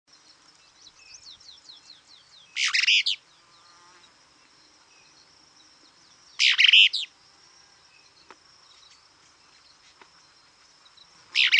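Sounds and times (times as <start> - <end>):
continuous high-pitched insect hum: 0.1 - 11.5
Plain-crested elaenia nominate subspecies cristata calls: 2.6 - 4.1, 6.4 - 7.1, 11.3 - 11.5.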